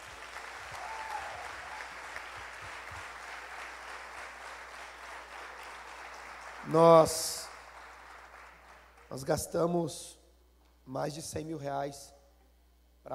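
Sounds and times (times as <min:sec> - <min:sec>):
audience applause: 0:00.0 - 0:09.1
speech: 0:06.7 - 0:07.5, 0:09.1 - 0:10.2, 0:10.9 - 0:12.2.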